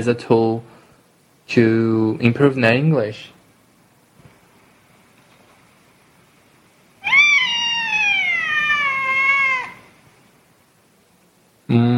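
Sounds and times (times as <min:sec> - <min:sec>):
speech: 0:00.0 - 0:00.6, 0:01.5 - 0:03.4
cat meowing: 0:07.0 - 0:10.0.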